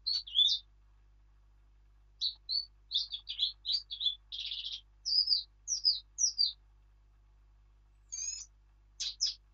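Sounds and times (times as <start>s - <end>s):
Eurasian blackcap Sylvia atricapilla song: 0.0s - 0.7s, 2.2s - 6.6s, 8.1s - 9.5s.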